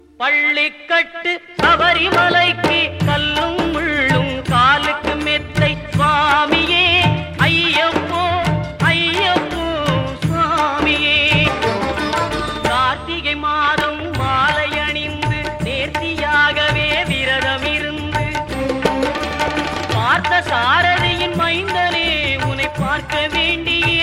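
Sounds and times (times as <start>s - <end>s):
Tamil devotional song: 0.0s - 24.0s.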